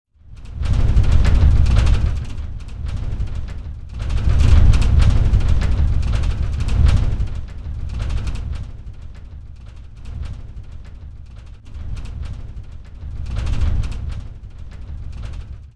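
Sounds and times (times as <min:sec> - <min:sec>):
interior turbulence rumble: 0:00.2 - 0:15.7.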